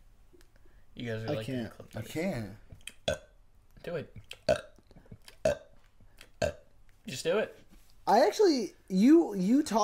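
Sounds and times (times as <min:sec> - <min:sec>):
speech: 0:01.0 - 0:03.2, 0:03.8 - 0:04.7, 0:07.1 - 0:09.8
person burping: 0:04.2 - 0:05.7, 0:06.4 - 0:06.7.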